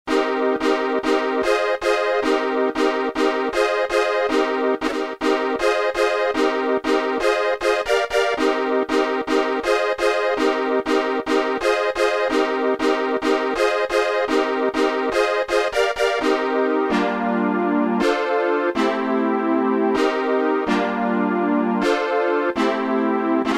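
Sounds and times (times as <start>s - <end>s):
minor-key rave synth music: 0.1s - 23.5s.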